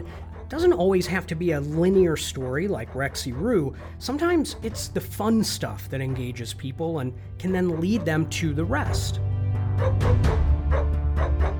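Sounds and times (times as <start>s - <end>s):
speech: 0.0s - 11.0s
dog barks forming a musical theme tune: 7.5s - 9.1s, 9.8s - 11.5s.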